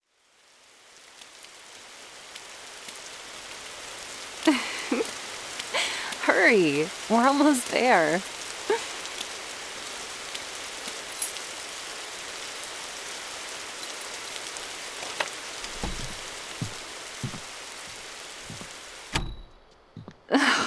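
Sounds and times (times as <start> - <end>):
steady dense rain falling: 0.0 - 20.6
speech: 4.4 - 5.2, 6.4 - 8.9
knocks and bumps: 15.6 - 20.3
soft low thuds: 15.6 - 20.3.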